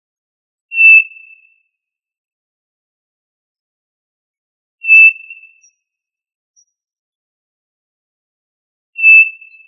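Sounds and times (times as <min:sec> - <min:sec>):
tinamou whistled call: 0:00.7 - 0:01.7, 0:04.8 - 0:05.9, 0:09.0 - 0:09.6.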